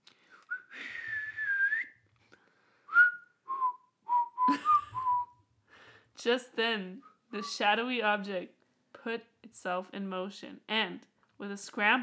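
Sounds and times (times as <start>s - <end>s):
man whistling a short melodic tune: 0.5s - 2.1s, 2.9s - 5.4s
speech: 6.2s - 12.0s.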